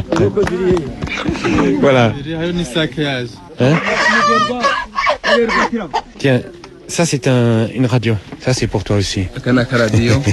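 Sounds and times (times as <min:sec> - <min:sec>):
speech: 0:00.0 - 0:10.3
hens clucking: 0:01.0 - 0:02.2, 0:03.5 - 0:06.8.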